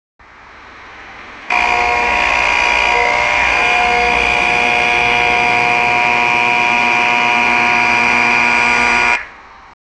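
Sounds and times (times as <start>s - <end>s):
police buzzer: 1.5s - 9.3s.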